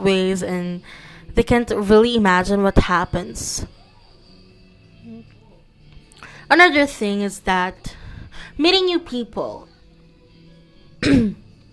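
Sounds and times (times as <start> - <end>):
speech: 0.0 - 3.8, 6.5 - 9.7, 11.0 - 11.4
throat clearing from a person with an itchy throat: 11.0 - 11.5.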